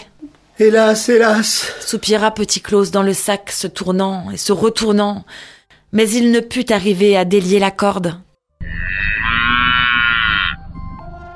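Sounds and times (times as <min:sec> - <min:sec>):
speech: 0:00.6 - 0:09.0
cow mooing: 0:08.6 - 0:10.6.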